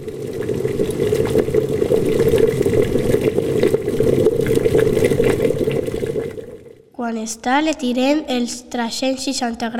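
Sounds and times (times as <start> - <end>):
water pouring into a cooking pot: 0.0 - 6.9
speech: 7.1 - 9.7.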